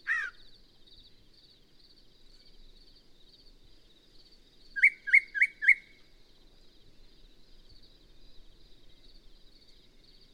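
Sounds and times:
Yellow-breasted Chat song phrase of clear whistled notes: 0:00.0 - 0:10.3.

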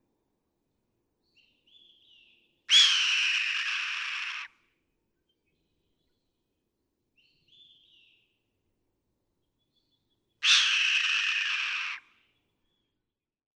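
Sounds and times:
red-tailed hawk hoarse screams: 0:02.7 - 0:04.5, 0:10.4 - 0:12.0.

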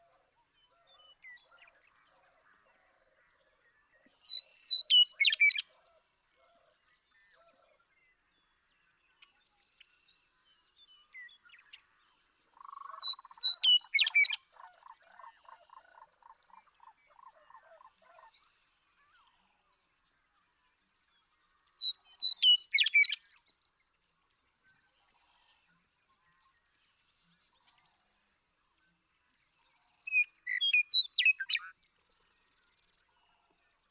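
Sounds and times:
western meadowlark singing: 0:04.2 - 0:05.6, 0:12.6 - 0:14.4, 0:21.0 - 0:24.3, 0:29.9 - 0:31.7.

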